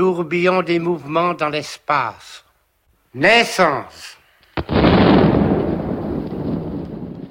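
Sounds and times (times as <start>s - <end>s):
speech: 0.0s - 2.4s, 3.1s - 5.2s
heavy artillery shell explosion: 4.5s - 7.2s.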